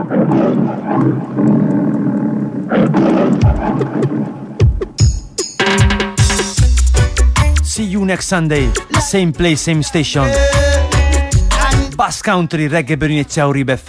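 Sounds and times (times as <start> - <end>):
speech: 0.0 - 2.0, 2.7 - 4.4, 8.1 - 10.9, 12.0 - 13.8
lion roaring in the jungle: 0.0 - 4.6
music with thumping bass beats: 4.6 - 9.4, 10.1 - 12.0.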